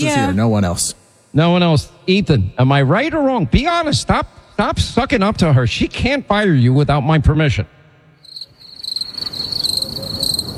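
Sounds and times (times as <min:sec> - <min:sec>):
speech: 0:00.0 - 0:07.8
crickets chirping in a high-pitched trill: 0:08.2 - 0:10.5.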